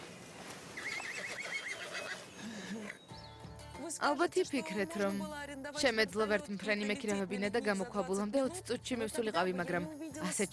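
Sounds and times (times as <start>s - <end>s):
steady rustling noise: 0.0s - 2.9s
horses neighing: 0.7s - 3.0s
speech: 4.0s - 10.5s.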